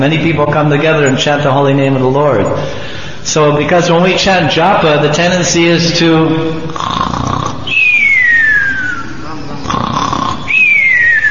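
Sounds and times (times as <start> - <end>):
speech: 0.0 - 7.6
voice imitating snoring: 6.6 - 11.0.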